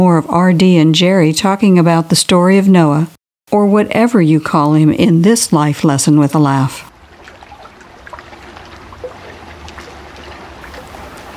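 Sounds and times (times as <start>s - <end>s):
speech: 0.0s - 6.9s
light splashes: 6.9s - 11.3s
water lapping around a small rowboat on a pond: 6.9s - 11.3s.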